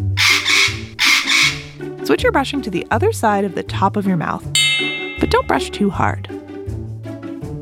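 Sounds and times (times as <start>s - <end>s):
parrot screeching with harsh raspy squawks: 0.0s - 1.8s
speech: 2.1s - 6.4s.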